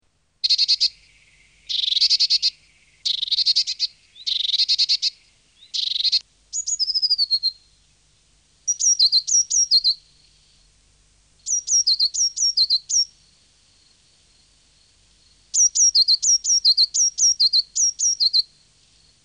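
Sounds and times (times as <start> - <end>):
blue tit calling: 0.4 - 7.7, 8.7 - 10.4, 11.4 - 13.1, 15.5 - 18.5.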